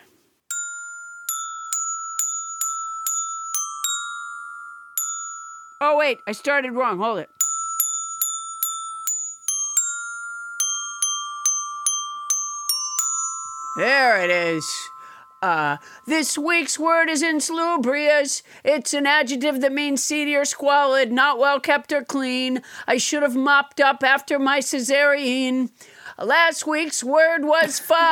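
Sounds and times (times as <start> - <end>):
glockenspiel playing a tune: 0.5 - 17.9
speech: 6.0 - 7.4, 13.8 - 28.1
laughter: 27.8 - 28.1.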